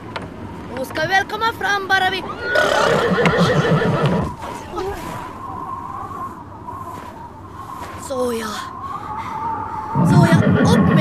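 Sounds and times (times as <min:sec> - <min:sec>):
low rumbling noise: 0:00.0 - 0:11.0
speech: 0:00.8 - 0:05.2, 0:08.1 - 0:08.8
horse whinnying: 0:02.3 - 0:04.4, 0:10.0 - 0:11.0.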